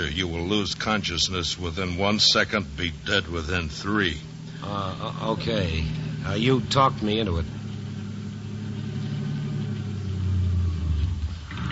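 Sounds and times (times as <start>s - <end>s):
speech: 0.0s - 7.6s
car engine idling at the curb: 0.0s - 11.7s.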